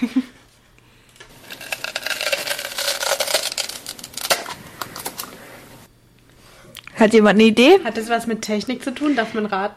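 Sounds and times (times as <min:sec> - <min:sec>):
speech: 0:00.0 - 0:00.2, 0:07.0 - 0:09.7
Nutella jar seal crackling as it is peeled back: 0:01.3 - 0:05.4.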